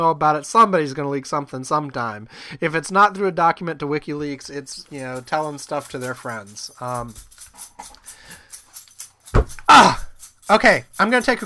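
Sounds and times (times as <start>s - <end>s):
speech: 0.0s - 8.0s, 9.7s - 11.4s
metallic jingling of dog collar tags: 4.6s - 11.4s.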